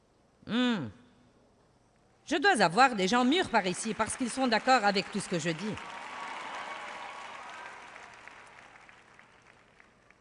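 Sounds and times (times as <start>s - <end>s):
speech: 0.5s - 1.0s, 2.3s - 5.9s
audience applauding: 3.6s - 10.1s.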